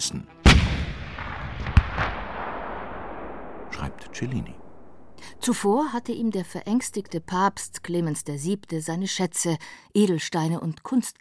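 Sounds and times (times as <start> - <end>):
speech: 0.0 - 0.4, 3.8 - 4.6, 5.3 - 11.1
lone cannon fired at besieging enemy troops: 0.4 - 6.6.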